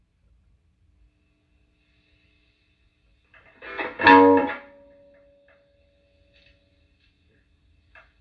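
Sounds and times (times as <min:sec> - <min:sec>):
distorted electric guitar through an amplifier's gain channel: 0:03.5 - 0:04.7.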